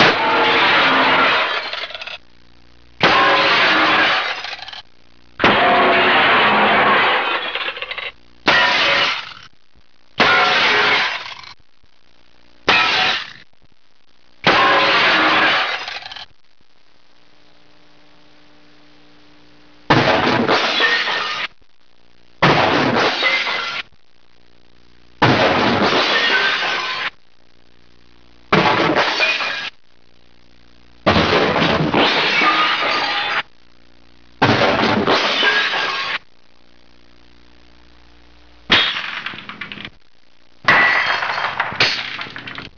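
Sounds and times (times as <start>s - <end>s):
glass crashes: 0.0s - 2.2s, 3.0s - 4.8s, 5.4s - 9.5s, 10.2s - 11.6s, 12.7s - 13.5s, 14.4s - 16.3s, 19.9s - 21.5s, 22.4s - 23.9s, 25.2s - 27.1s, 28.5s - 29.8s, 31.1s - 33.5s, 34.4s - 36.2s, 38.7s - 40.0s, 40.6s - 42.7s.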